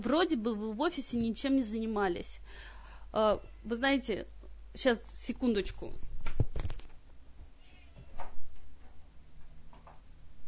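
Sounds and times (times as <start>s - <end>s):
speech: 0.0s - 6.1s
cat meowing to be let out: 7.6s - 8.2s.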